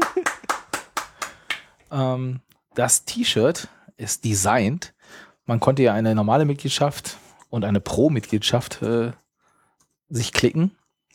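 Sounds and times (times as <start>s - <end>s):
applause of hand claps: 0.0s - 1.8s
speech: 1.9s - 9.2s, 10.1s - 10.8s.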